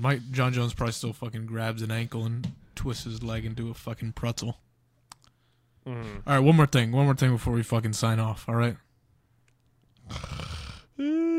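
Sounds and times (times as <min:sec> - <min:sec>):
speech: 0:00.0 - 0:04.7, 0:05.8 - 0:08.8, 0:10.1 - 0:11.3
drawn-out yawn with breathy inhale and voiced groan: 0:10.0 - 0:11.3.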